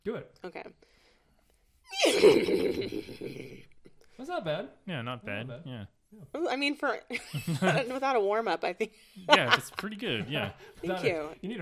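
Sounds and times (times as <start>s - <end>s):
speech: 0.0s - 0.8s, 4.4s - 11.6s
person imitating a horse whinny: 1.9s - 3.6s.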